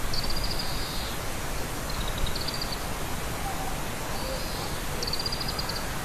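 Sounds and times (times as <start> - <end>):
oriental greenfinch chirping on an electric wire above a parking lot: 0.1 - 1.2, 1.9 - 2.9, 3.6 - 5.8.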